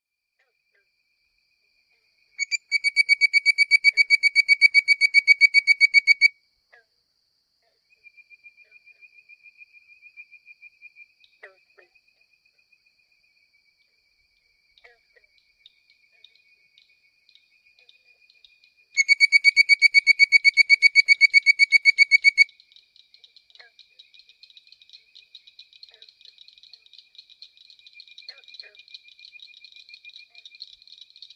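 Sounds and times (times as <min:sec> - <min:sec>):
Hyla avivoca frog bird-like whistling call: 0:02.4 - 0:06.3, 0:19.0 - 0:22.5.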